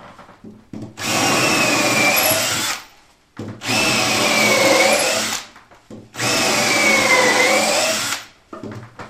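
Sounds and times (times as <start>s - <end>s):
electric drill boring medium-sized holes: 1.0s - 2.8s, 3.6s - 5.5s, 6.2s - 8.3s.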